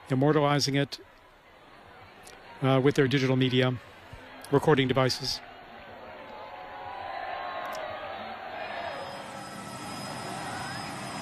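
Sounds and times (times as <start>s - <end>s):
speech: 0.1s - 1.2s, 2.6s - 3.9s, 4.5s - 5.5s
large crowd cheering enthusiastically in response to a greeting and blessing: 3.8s - 11.1s.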